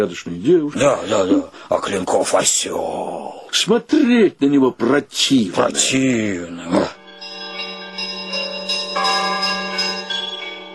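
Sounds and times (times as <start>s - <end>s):
speech: 0.0s - 7.0s
church bells ringing briskly late at night: 7.0s - 10.7s.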